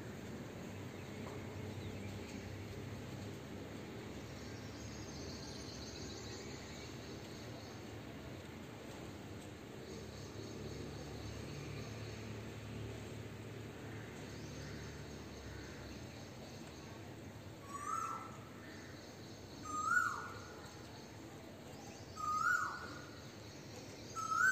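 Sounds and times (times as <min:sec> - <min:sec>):
steady low hum of traffic: 0:00.0 - 0:24.5
bird giving short clear downward-sliding calls: 0:17.6 - 0:18.4, 0:19.6 - 0:20.5.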